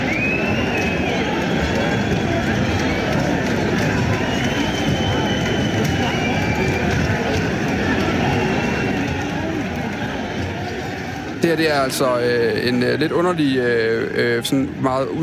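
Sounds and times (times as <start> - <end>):
football fans roaring while brawling in the stands: 0.0 - 11.4
speech: 11.5 - 15.2.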